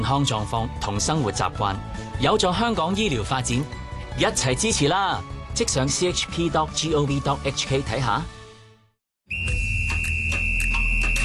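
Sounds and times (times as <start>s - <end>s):
speech: 0.0s - 8.4s
referee whistle blast: 9.3s - 11.2s.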